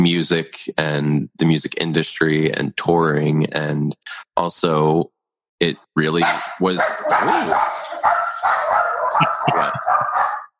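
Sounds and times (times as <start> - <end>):
speech: 0.0 - 7.7
laughter: 0.4 - 4.3, 9.1 - 10.3
several dogs barking at the mailman: 6.2 - 10.5.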